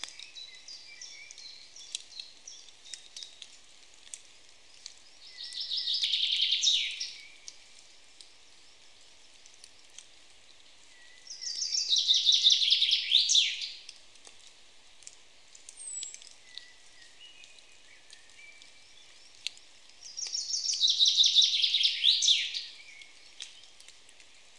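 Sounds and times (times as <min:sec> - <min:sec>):
Fringilla coelebs common chaffinch song: 0:00.0 - 0:03.5, 0:04.6 - 0:07.6, 0:10.8 - 0:13.9, 0:15.7 - 0:24.5.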